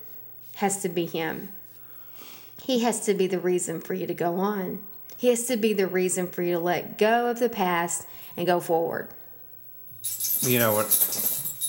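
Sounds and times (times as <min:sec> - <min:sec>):
speech: 0:00.6 - 0:01.6, 0:02.6 - 0:09.2, 0:10.0 - 0:11.2
metallic jingling of collar tags: 0:09.9 - 0:11.6.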